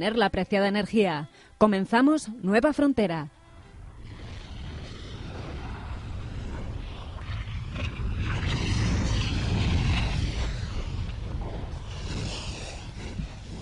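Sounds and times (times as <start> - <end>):
speech: 0.0 - 3.4
churning roar of a volcano with magma and fire: 3.6 - 13.5.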